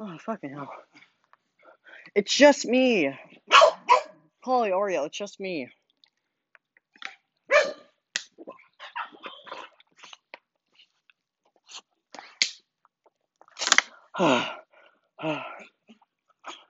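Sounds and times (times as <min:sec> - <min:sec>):
speech: 0:00.2 - 0:01.0, 0:02.1 - 0:03.8, 0:04.4 - 0:05.8, 0:14.2 - 0:14.6, 0:15.2 - 0:15.6
excited dogs barking and yelping greeting their owner returning home: 0:03.4 - 0:04.2, 0:07.4 - 0:10.1
person sighing: 0:14.1 - 0:15.7.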